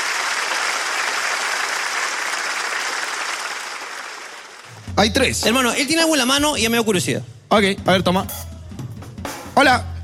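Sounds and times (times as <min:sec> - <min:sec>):
crowd applause: 0:00.0 - 0:04.9
speech: 0:05.0 - 0:08.5, 0:09.6 - 0:09.9.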